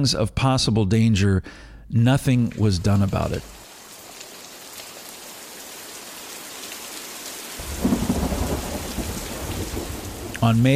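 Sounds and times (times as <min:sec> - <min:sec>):
speech: 0:00.0 - 0:03.6, 0:10.4 - 0:10.7
heavy rain pouring: 0:02.4 - 0:10.7
deep rumble of thunder: 0:07.6 - 0:10.7.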